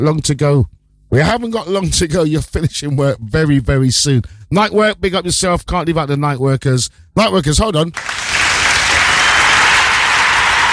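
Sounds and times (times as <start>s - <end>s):
speech: 0.0s - 8.2s
crowd applauding: 8.0s - 10.7s.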